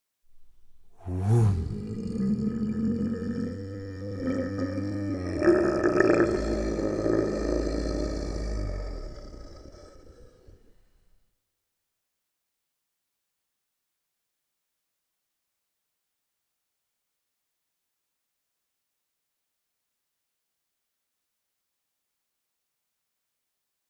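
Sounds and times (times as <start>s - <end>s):
adult kaiju ship entity death: 0.9s - 10.4s.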